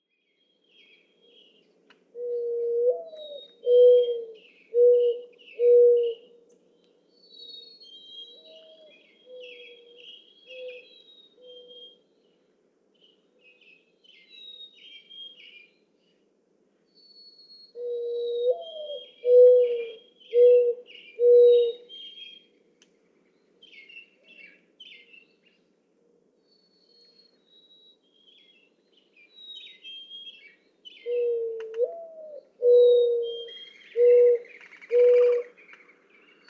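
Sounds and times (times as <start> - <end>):
mourning dove: 0.9 - 6.6, 7.5 - 12.4, 17.6 - 22.6, 29.7 - 36.4.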